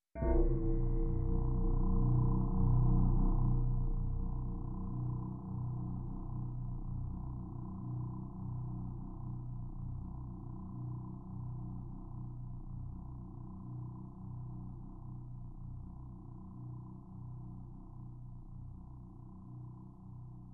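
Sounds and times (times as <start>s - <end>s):
aggressive growling scary drone: 0.2s - 15.2s.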